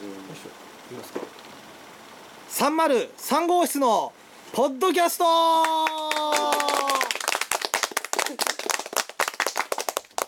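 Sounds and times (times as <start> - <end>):
speech: 0.4 - 1.4, 2.6 - 6.0
crowd applauding: 5.5 - 10.2.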